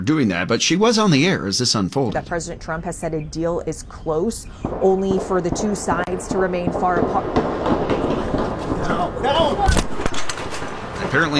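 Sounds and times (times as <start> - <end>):
speech: 0.0 - 7.9, 11.1 - 11.3
gunshots fired during a shooting: 4.6 - 11.3
raised voices and shouting: 8.8 - 9.8.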